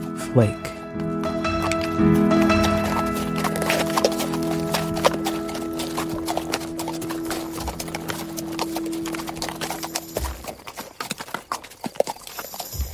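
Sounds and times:
speech: 0:00.4 - 0:00.7, 0:02.0 - 0:02.5
horse hooves clip-clopping on a track: 0:01.0 - 0:12.9.

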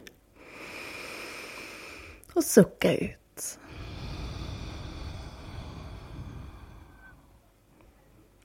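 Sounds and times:
deep inhale through the nose: 0:00.4 - 0:02.2, 0:03.6 - 0:07.6
speech: 0:02.3 - 0:03.6.

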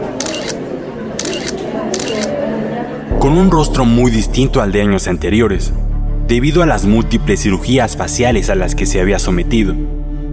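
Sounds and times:
crowd murmuring: 0:00.0 - 0:05.2
press photographers' camera shutters clicking: 0:00.2 - 0:00.6, 0:01.2 - 0:02.4
speech: 0:03.2 - 0:10.0.

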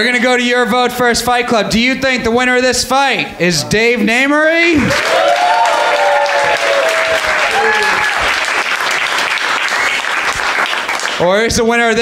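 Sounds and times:
speech: 0:00.0 - 0:05.8, 0:11.2 - 0:12.0
crowd cheering: 0:04.8 - 0:11.2
large audience clapping: 0:04.8 - 0:11.4
crowd whistling: 0:04.9 - 0:08.6, 0:09.3 - 0:10.4.

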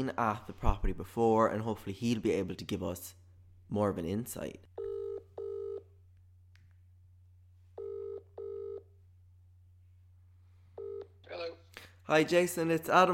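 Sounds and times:
speech: 0:00.0 - 0:04.7, 0:12.1 - 0:13.1
phone line double-pulse ring tone: 0:04.8 - 0:05.9, 0:07.8 - 0:09.0, 0:10.8 - 0:11.2.

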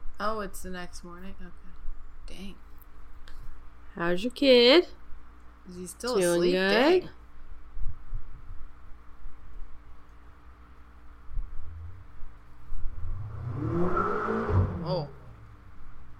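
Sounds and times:
low steady hum: 0:00.0 - 0:16.1
speech: 0:00.2 - 0:01.7, 0:02.3 - 0:02.7, 0:04.0 - 0:05.0, 0:05.6 - 0:07.2
car engine passing along the street: 0:11.6 - 0:15.8.

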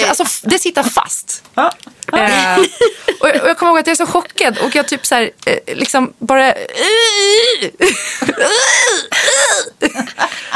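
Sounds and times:
speech: 0:00.2 - 0:10.5
laughter: 0:02.2 - 0:03.5, 0:09.8 - 0:10.5
person imitating small wheezing gasps: 0:08.4 - 0:09.8.

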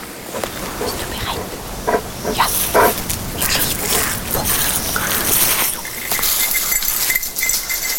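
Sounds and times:
busy outdoor noise: 0:00.0 - 0:07.9
excited search dog barking and whimpering: 0:00.3 - 0:04.8.

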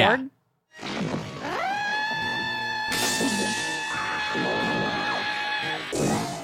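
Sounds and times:
woman's scream pitched up: 0:01.4 - 0:06.4.

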